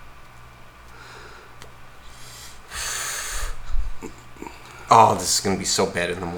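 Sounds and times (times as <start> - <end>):
breathy inhale of cigar smoke: 0.9 - 4.9
faint soft exhales: 0.9 - 4.9
speech: 4.9 - 6.3.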